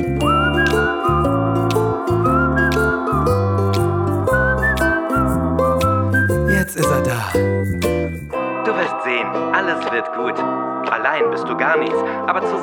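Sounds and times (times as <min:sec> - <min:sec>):
person whistling a bright wandering tune: 0:00.0 - 0:08.4
steady rhythmic musical backing: 0:00.0 - 0:12.6
speech: 0:11.2 - 0:12.6.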